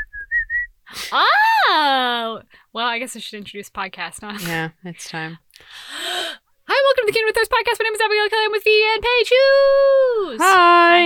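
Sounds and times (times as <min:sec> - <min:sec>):
person whistling short steady notes: 0:00.0 - 0:00.8
speech: 0:01.1 - 0:01.4, 0:02.3 - 0:05.9, 0:07.1 - 0:11.0.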